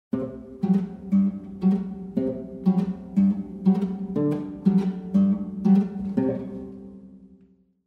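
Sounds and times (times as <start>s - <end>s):
harp playing softly: 0.2s - 7.3s.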